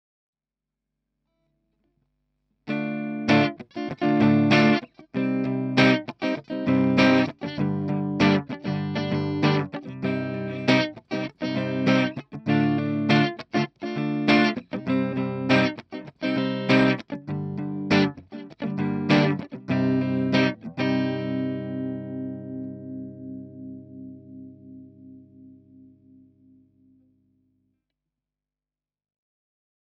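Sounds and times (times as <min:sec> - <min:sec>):
electric guitar recorded with a FetHead preamp: 0:02.7 - 0:27.1.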